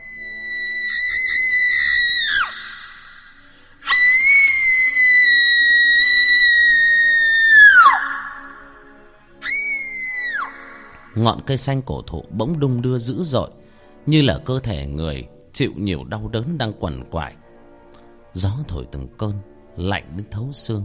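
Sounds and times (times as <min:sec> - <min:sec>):
young woman screaming mournfully: 0:00.0 - 0:03.2, 0:03.8 - 0:08.6, 0:09.4 - 0:10.8
speech: 0:11.2 - 0:17.4, 0:18.3 - 0:20.8.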